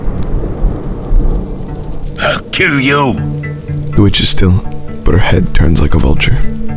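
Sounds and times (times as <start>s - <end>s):
deep rolling thunder: 0.0s - 4.0s
heavy rain: 0.0s - 6.7s
speech: 2.6s - 3.4s, 4.0s - 6.6s.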